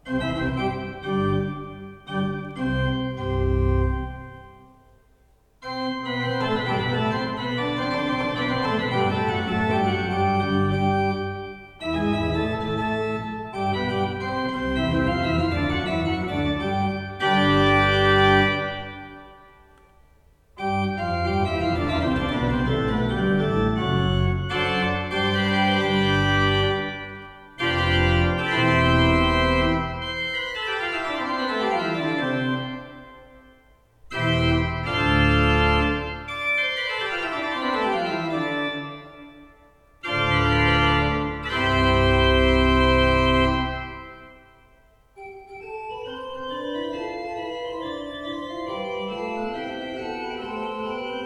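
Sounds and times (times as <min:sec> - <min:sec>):
Prengel 14 II P pipe organ: 0:00.0 - 0:05.0, 0:05.6 - 0:51.2.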